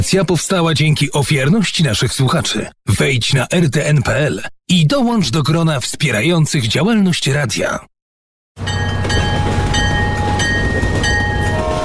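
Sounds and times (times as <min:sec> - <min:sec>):
speech: 0:00.1 - 0:07.9
rhythmic clatter of rail cars: 0:08.6 - 0:11.8
train rolling past: 0:08.6 - 0:11.8
metallic squeals of train: 0:08.8 - 0:11.8.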